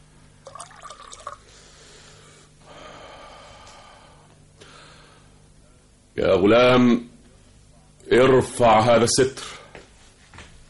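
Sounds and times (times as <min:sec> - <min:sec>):
wine being poured: 0:00.4 - 0:01.5
speech: 0:06.2 - 0:07.1, 0:08.1 - 0:09.6.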